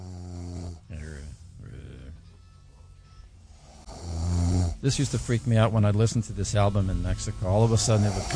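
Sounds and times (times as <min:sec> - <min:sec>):
man snoring on a music album: 0:00.0 - 0:02.2, 0:03.5 - 0:05.4, 0:07.5 - 0:08.3
speech: 0:04.8 - 0:08.3.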